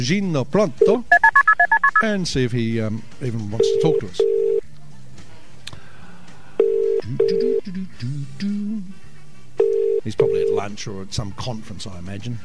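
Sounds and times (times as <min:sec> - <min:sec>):
speech: 0:00.0 - 0:01.2, 0:02.0 - 0:04.4, 0:10.1 - 0:12.4
steady phone line tones: 0:01.1 - 0:02.0, 0:03.6 - 0:04.6, 0:06.6 - 0:07.6, 0:09.6 - 0:10.6
telephone touch-tone keypad dialing beeps: 0:01.1 - 0:02.0.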